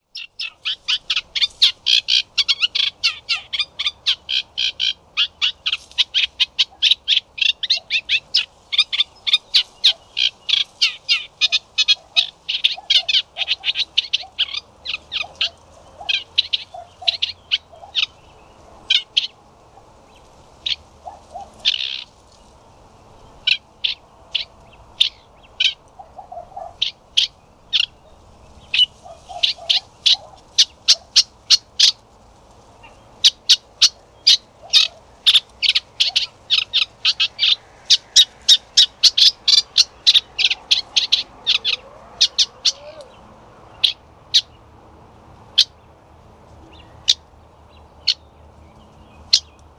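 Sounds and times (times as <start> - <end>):
Eurasian reed warbler Acrocephalus scirpaceus singing: 0.0 - 49.7.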